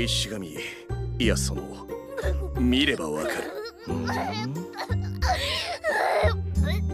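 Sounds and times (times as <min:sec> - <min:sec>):
speech: 0:00.0 - 0:06.8
person sobbing with gasps: 0:02.1 - 0:06.9.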